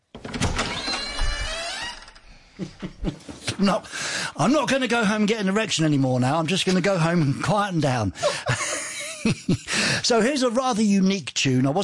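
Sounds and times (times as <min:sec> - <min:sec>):
door opening with a scraping creaking slide: 0:00.0 - 0:02.5
laughter: 0:02.6 - 0:03.3, 0:08.1 - 0:09.9
speech: 0:02.6 - 0:11.8.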